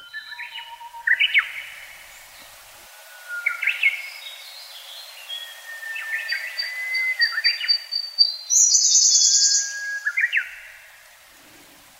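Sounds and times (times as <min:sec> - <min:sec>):
Siberian blue robins singing in the forest of Kirifuri Highland Japan: 0:00.0 - 0:11.0.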